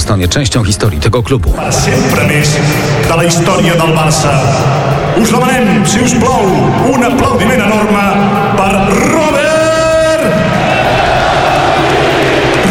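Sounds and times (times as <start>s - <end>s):
speech: 0.1s - 9.5s
stadium crowd applauding: 3.6s - 12.6s.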